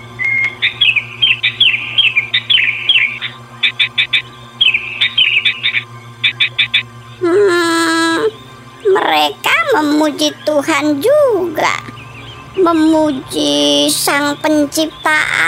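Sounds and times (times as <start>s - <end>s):
flock of birds chirping: 0.0s - 15.4s
speech: 5.5s - 11.8s, 12.6s - 15.4s.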